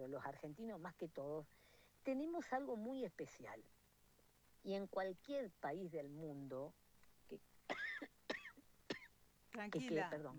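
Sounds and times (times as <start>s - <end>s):
speech: 0.0s - 3.8s, 4.6s - 8.1s, 9.6s - 10.3s
person with an allergic cough: 7.7s - 9.1s
throat clearing: 7.7s - 9.1s.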